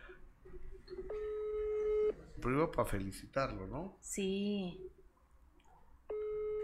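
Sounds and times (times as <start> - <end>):
telephone ringback tone: 1.1 - 2.2, 6.1 - 6.6
speech: 2.4 - 5.0.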